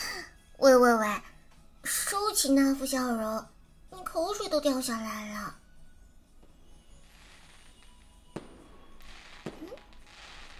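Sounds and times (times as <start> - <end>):
speech: 2.4 - 3.6, 4.2 - 5.6
hiss: 6.3 - 10.5
fireworks exploding: 6.4 - 10.5.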